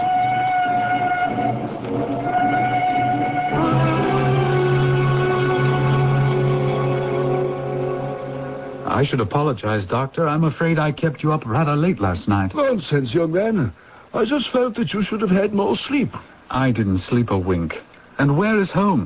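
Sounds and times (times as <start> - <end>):
train rumbling: 0.0 - 9.2
speech: 9.0 - 19.0.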